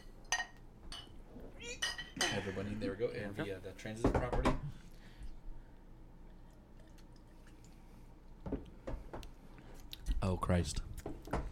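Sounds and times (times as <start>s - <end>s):
glasses clinking in a toast: 0.2s - 1.2s, 1.8s - 2.5s
speech: 2.3s - 4.8s, 10.3s - 10.9s.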